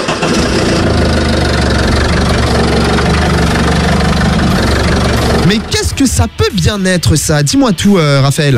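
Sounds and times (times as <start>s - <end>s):
tractor engine starter cranking: 0.0s - 6.4s
tractor engine idling with deep chug: 0.0s - 8.2s
speech: 5.5s - 8.5s.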